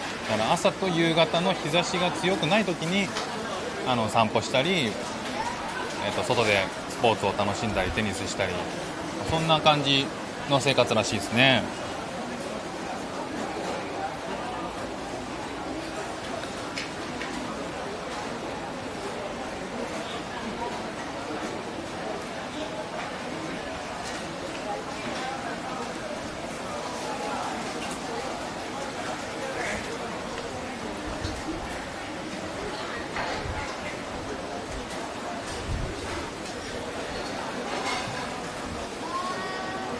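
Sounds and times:
overlapping crowd chatter in a busy hawker centre food court in Singapore: 0.0s - 39.9s
speech: 0.3s - 5.1s, 6.0s - 11.8s
dishes and utensils clinking and clattering in a hawker centre food court: 36.4s - 38.4s.

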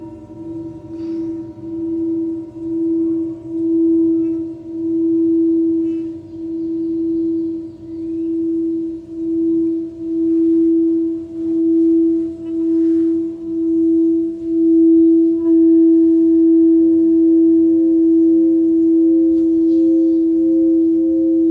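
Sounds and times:
singing bowl ringing with a steady pure tone: 0.0s - 21.4s.

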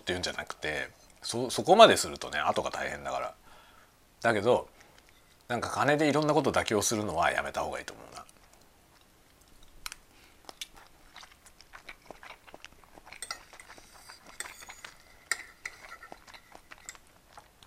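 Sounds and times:
speech: 0.0s - 3.4s, 4.2s - 4.7s, 5.5s - 8.3s
chewing and biting while eating lunch: 8.3s - 15.1s, 15.9s - 17.6s
cutlery clinking and scraping against dishes: 13.1s - 17.0s.

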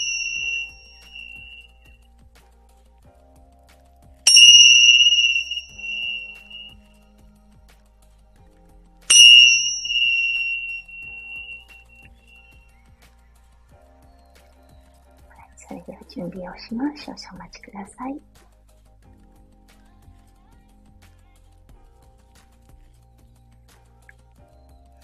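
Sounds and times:
energy-healing bell struck: 0.0s - 1.7s, 4.3s - 6.8s, 9.1s - 12.1s
speech: 15.9s - 18.4s.

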